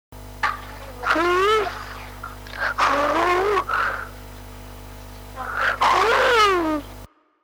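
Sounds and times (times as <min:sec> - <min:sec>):
wolf howling: 0:00.9 - 0:04.2, 0:05.4 - 0:06.8.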